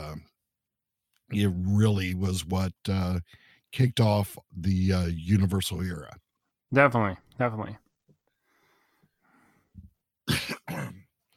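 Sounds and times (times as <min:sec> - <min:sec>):
speech: 0:01.3 - 0:07.8
harsh coughing from scotch caught in the throat: 0:10.2 - 0:11.2
throat clearing from scotch caught in the throat: 0:10.3 - 0:11.1.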